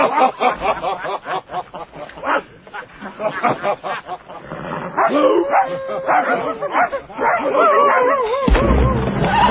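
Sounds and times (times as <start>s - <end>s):
laughter: 0.0s - 9.4s
war dog barking: 2.2s - 2.5s, 5.0s - 8.5s
war dog whining and yelping: 5.0s - 8.7s.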